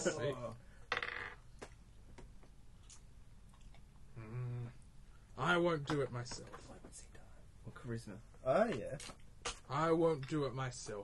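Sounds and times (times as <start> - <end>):
speech: 0.0 - 0.7, 5.4 - 11.0
dice rolling across a table: 0.9 - 1.7.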